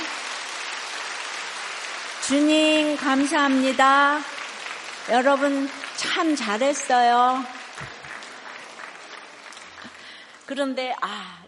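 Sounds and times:
crowd applauding: 0.0s - 10.8s
speech: 2.3s - 4.4s, 5.1s - 7.6s, 10.5s - 11.4s.

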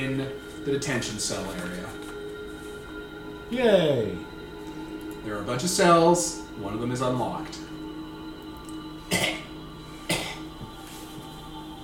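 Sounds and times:
speech: 0.0s - 2.1s, 3.5s - 4.3s, 5.2s - 7.7s
short harsh coughs: 9.1s - 10.6s.

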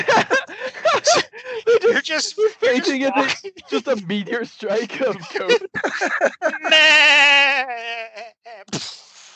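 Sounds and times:
speech: 0.0s - 0.5s, 1.9s - 9.0s
laughter: 0.0s - 8.2s
goat bleating: 6.6s - 8.3s.

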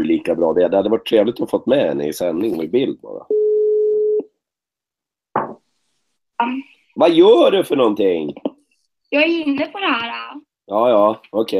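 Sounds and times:
speech: 0.1s - 3.3s, 6.4s - 8.5s, 9.1s - 11.5s
telephone ringing tone beep: 3.3s - 4.2s.

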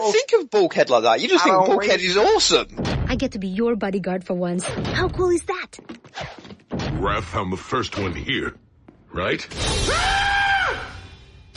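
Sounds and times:
speech: 0.0s - 6.4s, 7.0s - 10.3s
high-pitched scream: 9.7s - 11.1s.

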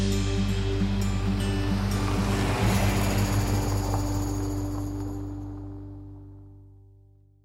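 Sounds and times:
ocean surf at a beach on a morning: 0.2s - 5.7s.

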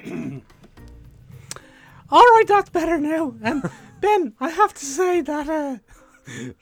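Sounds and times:
man clearing his throat: 0.0s - 4.2s
laughter: 0.0s - 6.6s
speech: 2.1s - 6.6s.

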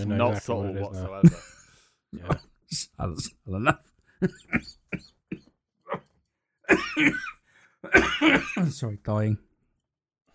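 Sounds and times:
speech: 0.0s - 1.5s, 2.1s - 5.2s, 6.7s - 9.4s
person coughing: 2.2s - 6.1s, 6.7s - 8.7s.

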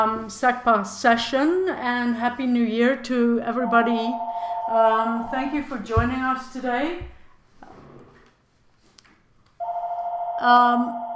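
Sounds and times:
speech: 0.0s - 7.2s, 10.4s - 11.1s
mobile phone ringtone: 3.6s - 5.3s, 9.6s - 11.1s.

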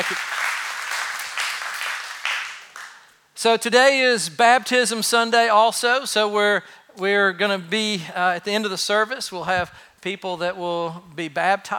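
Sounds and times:
church congregation clapping: 0.0s - 3.2s
speech: 3.4s - 11.7s.

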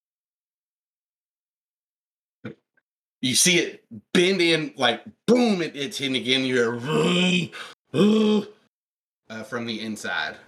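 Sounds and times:
speech: 3.2s - 8.6s, 9.3s - 10.4s
person imitating a bear growl: 6.8s - 8.5s.

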